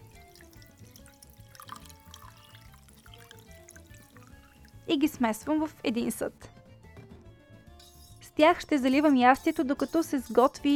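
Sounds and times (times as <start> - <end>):
faint drips: 0.0 - 4.9
mushroom soaking water being poured into broth in a pot: 0.0 - 4.9
speech: 4.9 - 6.5, 8.4 - 10.7.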